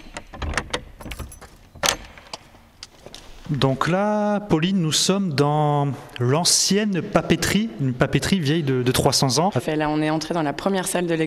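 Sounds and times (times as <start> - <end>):
metal latches of an old door clicking and clunking: 0.0 - 3.0
keys jangling at an old door: 1.0 - 2.9
speech: 3.5 - 11.2.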